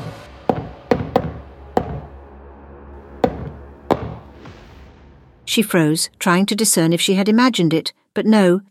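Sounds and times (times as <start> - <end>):
knocking from the other side of a closet in a rhythmic pattern: 0.5 - 2.1
speech: 5.5 - 8.6.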